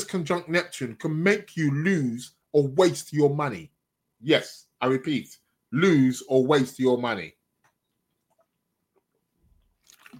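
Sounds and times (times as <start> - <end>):
speech: 0.1 - 7.4
person sipping water: 8.1 - 10.1
slurping gulp: 9.6 - 10.1.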